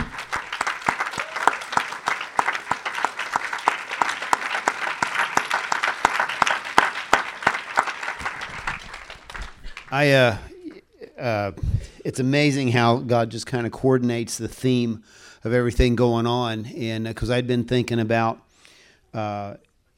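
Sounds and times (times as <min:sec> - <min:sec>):
crowd applauding: 0:00.0 - 0:10.4
warbling whistle-like cheer: 0:01.0 - 0:02.5
speech: 0:09.9 - 0:10.5, 0:11.2 - 0:18.4, 0:19.2 - 0:19.7.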